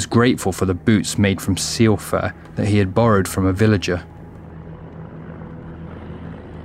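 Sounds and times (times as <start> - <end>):
speech: 0.0 - 4.1
engine droning outdoors in the Kvarken archipelago: 0.0 - 6.6.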